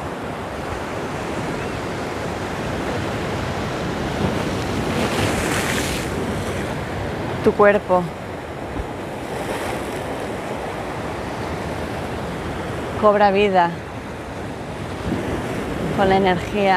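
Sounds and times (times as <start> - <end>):
ocean waves breaking on shore: 0.0 - 16.7
wind: 0.0 - 16.7
speech: 7.4 - 8.2, 13.0 - 13.8, 16.0 - 16.7.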